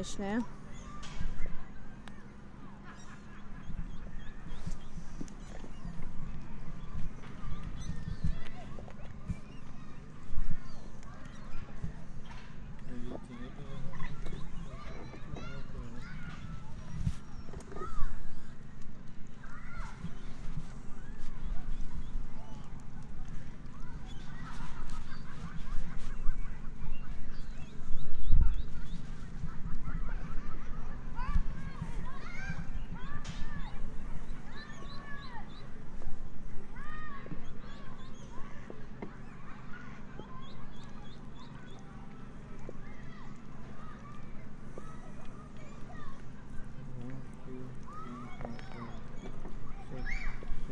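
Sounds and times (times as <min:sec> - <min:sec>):
speech: 0:00.0 - 0:00.6
birds: 0:00.0 - 0:50.7
scattered voices in an outdoor park: 0:00.0 - 0:50.7
steady low hum of activity in an outdoor park: 0:00.0 - 0:50.7
faint clip-clopping footsteps: 0:03.6 - 0:50.7.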